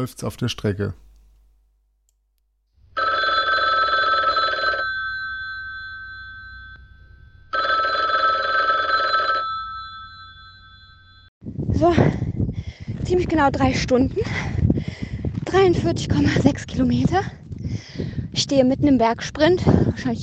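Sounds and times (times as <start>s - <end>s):
speech: 0.0s - 1.1s, 11.8s - 12.1s, 13.2s - 14.9s, 15.5s - 17.4s, 18.4s - 20.2s
telephone ringing: 2.9s - 11.3s
person answering phone: 3.0s - 6.7s, 7.5s - 11.0s.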